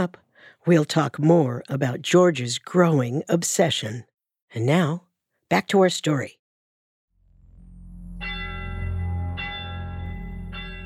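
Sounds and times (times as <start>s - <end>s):
speech: 0.0s - 6.4s
heavy low drone: 7.2s - 10.8s
deep church bell on top of a mansion in Stalybridge chiming: 8.1s - 10.8s.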